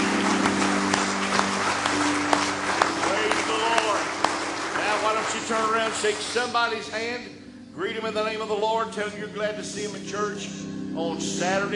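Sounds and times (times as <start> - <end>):
church audience clapping hands in praise: 0.0 - 7.2
speech: 5.8 - 11.7.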